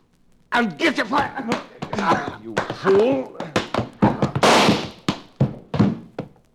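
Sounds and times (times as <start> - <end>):
speech: 0.6 - 3.5
short sharp thumps and knocks: 1.0 - 6.5
gunshot in a western shootout: 4.3 - 5.2.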